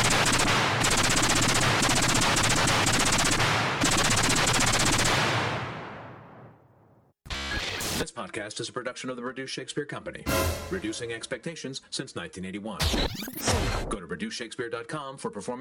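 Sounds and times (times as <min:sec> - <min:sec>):
sustained machine gun fire: 0:00.0 - 0:05.9
speech: 0:08.2 - 0:15.5.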